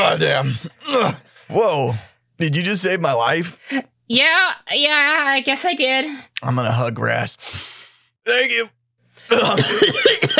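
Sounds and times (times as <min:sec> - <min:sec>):
speech: 0:00.2 - 0:10.3
person coughing up water: 0:09.3 - 0:10.3.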